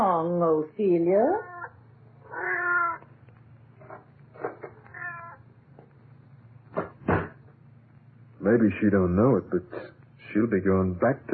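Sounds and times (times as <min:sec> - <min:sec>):
speech: 0:00.0 - 0:01.6, 0:08.4 - 0:11.3
cat meowing loudly: 0:01.4 - 0:03.1, 0:03.8 - 0:05.5
sharp thumps: 0:06.7 - 0:07.5.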